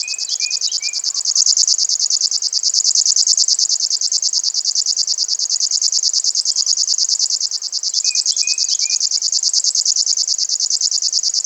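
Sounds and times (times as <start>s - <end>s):
river warbler buzzing song: 0.0s - 2.3s, 7.6s - 9.2s.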